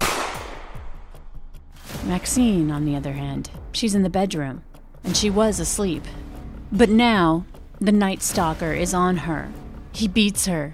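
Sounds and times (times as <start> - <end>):
single loud gunshot: 0.0 - 1.1
speech: 2.1 - 10.7.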